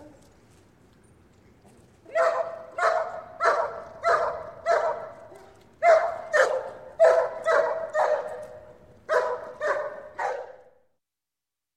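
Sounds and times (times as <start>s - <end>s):
German Shepherd barking: 2.1s - 10.7s.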